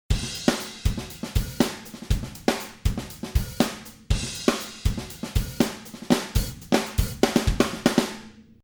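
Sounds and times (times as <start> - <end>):
drum software instruments: 0.0 - 8.6.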